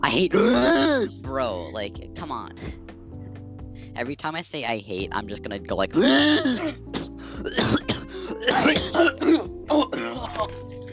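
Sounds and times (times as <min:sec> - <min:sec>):
speech: 0:00.0 - 0:02.9, 0:04.0 - 0:07.9, 0:08.5 - 0:10.7
person clearing throat: 0:00.3 - 0:01.1, 0:06.0 - 0:10.6
person coughing: 0:00.3 - 0:01.1, 0:06.0 - 0:10.6.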